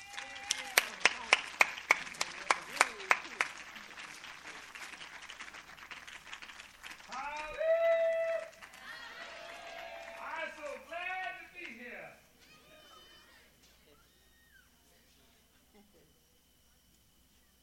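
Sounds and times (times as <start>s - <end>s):
sharp evenly spaced handclaps: 0.0s - 11.8s.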